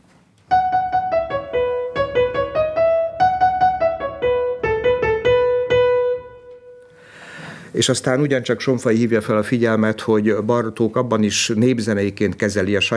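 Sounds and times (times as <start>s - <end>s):
folk-song-style melody with altered meter in struck notes: 0.5s - 7.1s
speech: 7.8s - 12.9s.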